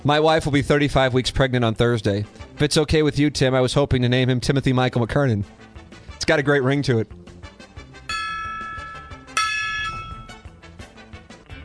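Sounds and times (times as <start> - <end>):
speech: 0.0 - 7.3
gong struck as a segment sound effect: 8.1 - 10.4.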